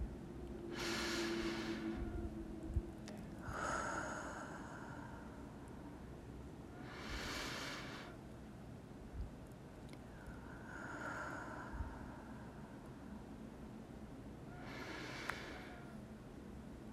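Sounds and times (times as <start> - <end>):
low steady hum: 0.0 - 16.9
slow deep breathing during a guided prayer exercise: 0.7 - 2.2, 3.4 - 6.0, 6.8 - 8.2, 10.1 - 13.1, 14.6 - 16.0.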